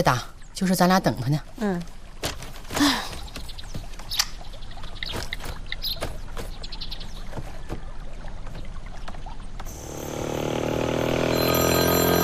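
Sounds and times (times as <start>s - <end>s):
speech: 0.0s - 2.0s
splashy watery knocking: 2.1s - 9.7s
mobile phone ringtone: 11.2s - 12.2s.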